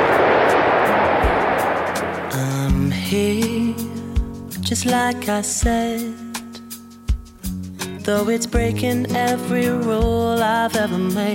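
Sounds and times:
Concorde airliner engines roaring while taxiing: 0.0 - 3.0
music: 0.9 - 11.3
speech: 3.1 - 3.9, 4.7 - 6.3, 8.1 - 11.3.

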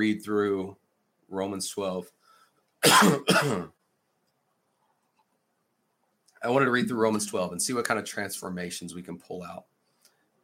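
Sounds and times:
speech: 0.0 - 2.2, 2.8 - 3.8, 6.4 - 9.7
person coughing: 2.8 - 3.8.

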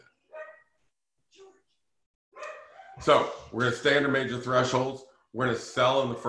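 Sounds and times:
dog barking: 0.3 - 0.6, 2.4 - 3.6
speech: 3.0 - 6.2.

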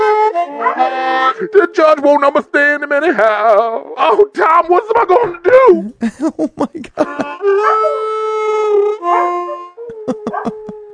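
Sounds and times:
dogs howling and whining: 0.5 - 1.1, 7.4 - 10.9
dogs yapping barks: 0.6 - 1.0, 7.6 - 8.0, 9.0 - 10.5
speech: 1.3 - 10.6
laughter: 4.1 - 8.0, 9.9 - 10.9.

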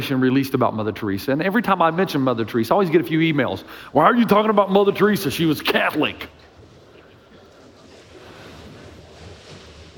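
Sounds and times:
speech: 0.0 - 6.4
ocean waves: 5.8 - 9.9.

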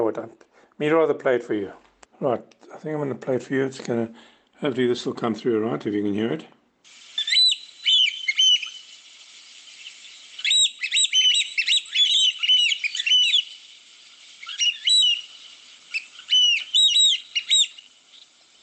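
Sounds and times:
speech: 0.0 - 7.0
African black oystercatcher shrill piping calls: 7.2 - 18.6.

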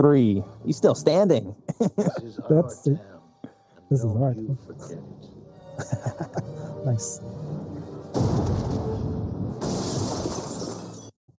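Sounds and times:
speech: 0.0 - 3.1, 3.9 - 8.9
laughter: 1.6 - 2.8, 5.7 - 6.9
loud booming movie-style gunshots with crackling rumbling tails: 8.1 - 11.0.

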